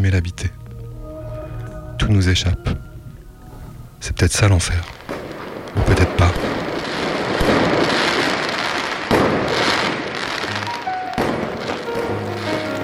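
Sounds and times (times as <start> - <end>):
speech: 0.0 - 0.6, 2.0 - 2.9, 4.0 - 5.0, 5.8 - 6.4
firework mortars bursting in a crackling barrage: 4.9 - 12.8
tonal firework whistles: 6.4 - 12.8.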